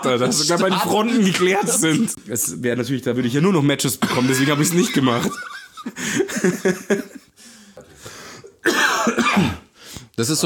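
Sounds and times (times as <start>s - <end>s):
laughter: 0.0s - 2.2s, 4.1s - 7.4s
speech: 0.0s - 7.2s, 10.2s - 10.4s
person coughing and clearing throat: 4.0s - 4.6s, 8.6s - 9.8s.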